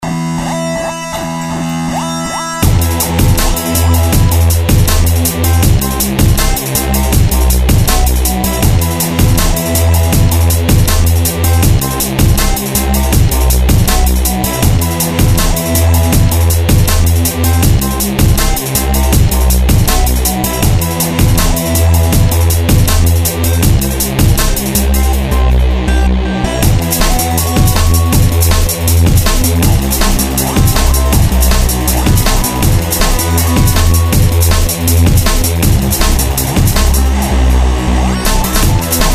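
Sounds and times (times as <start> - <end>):
drum and bass music cuts: 0.0 - 39.1.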